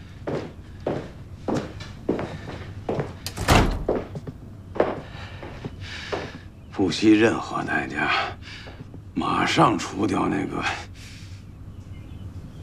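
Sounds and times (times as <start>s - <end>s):
soft thumping footsteps: 0.3s - 6.4s
door shutting with a heavy thud: 3.3s - 4.2s
speech: 6.8s - 8.4s, 9.2s - 10.8s.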